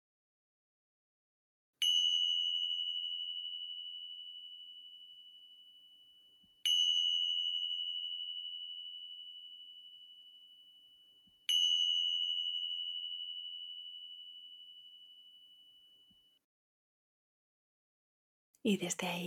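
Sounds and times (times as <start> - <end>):
small meditation bell strikes: 1.8 - 16.5
speech: 18.6 - 19.2.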